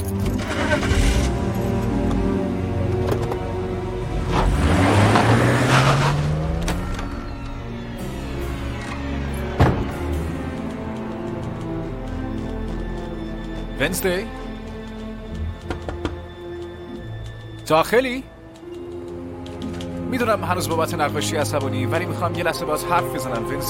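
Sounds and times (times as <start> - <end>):
car engine running as the vehicle is driven: 0.1 - 12.4
speech: 13.8 - 14.4, 17.7 - 18.3, 20.1 - 23.6.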